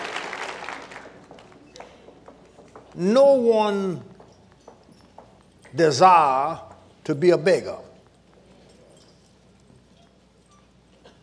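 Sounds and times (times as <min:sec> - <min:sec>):
church congregation clapping hands: 0:00.0 - 0:02.1
speech: 0:03.0 - 0:04.1, 0:05.7 - 0:07.9.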